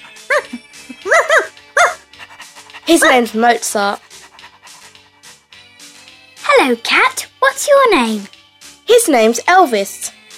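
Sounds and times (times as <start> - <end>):
dog barking: 0.2 - 2.1
speech: 2.9 - 4.1, 6.6 - 10.1.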